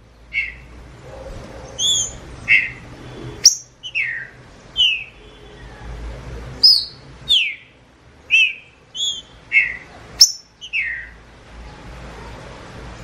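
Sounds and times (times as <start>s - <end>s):
wild green-winged saltator singing slurred downward-sweeping whistles in the bush: 0.3s - 0.6s, 3.4s - 5.2s, 6.6s - 7.7s, 8.3s - 11.2s.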